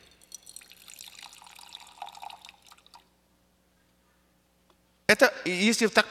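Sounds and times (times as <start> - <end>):
water pouring into an empty container: 0.2 - 3.1
speech: 5.1 - 6.0.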